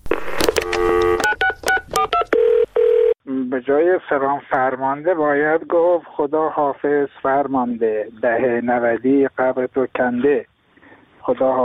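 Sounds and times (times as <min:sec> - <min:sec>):
telephone keypad dialing tones: 0:00.5 - 0:03.2
speech: 0:03.6 - 0:10.5, 0:11.2 - 0:11.6.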